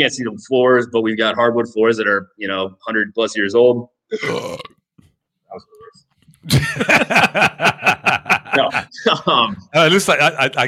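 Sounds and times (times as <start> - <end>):
speech: 0.0 - 4.8, 5.5 - 10.6
person burping loud and gravelly: 4.1 - 4.9
laughter: 6.4 - 9.6.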